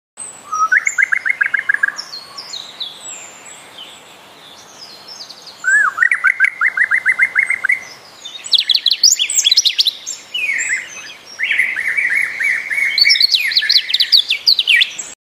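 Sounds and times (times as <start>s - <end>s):
Red crested turaco bird: 0.4s - 15.2s.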